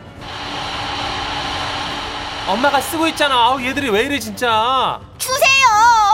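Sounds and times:
hair dryer blowing: 0:00.2 - 0:04.2
speech: 0:02.5 - 0:05.2.

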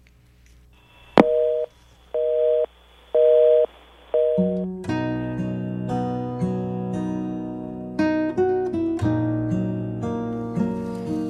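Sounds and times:
telephone busy signal beeping: 0:00.9 - 0:04.6
sharp click of a phone call being hung up: 0:01.2 - 0:04.6
instrumental music passage: 0:04.4 - 0:11.2.

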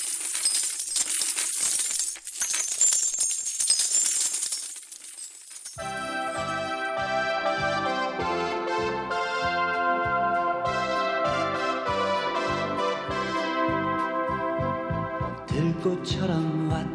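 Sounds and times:
coins pouring out of a piggy bank cut open at the belly: 0:00.0 - 0:07.0
music with steady tones: 0:05.8 - 0:16.9
speech: 0:15.8 - 0:16.9.

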